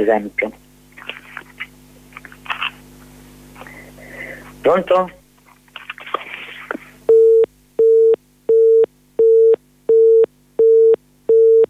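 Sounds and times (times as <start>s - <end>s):
speech: 0.0s - 0.6s, 4.6s - 5.2s
phone line busy tone beeps after the call drops: 7.1s - 11.6s.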